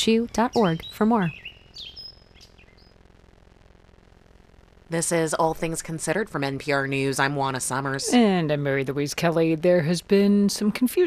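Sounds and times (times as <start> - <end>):
speech: 0.0 - 1.4, 4.9 - 11.0
high thin bird chirps: 0.4 - 3.0.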